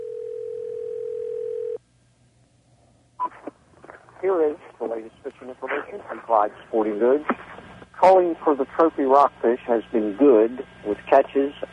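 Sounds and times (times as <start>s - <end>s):
telephone dial tone while calling a hotline: 0.0s - 1.8s
speech: 4.2s - 11.7s.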